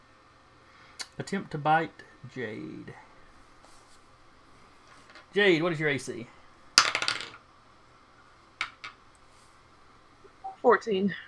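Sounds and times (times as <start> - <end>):
speech: 1.2 - 3.1, 5.3 - 6.4, 10.8 - 11.2
dice rolling on a hard tabletop: 4.8 - 6.2, 6.8 - 7.4, 8.6 - 9.0
isolated knocks: 8.6 - 9.0.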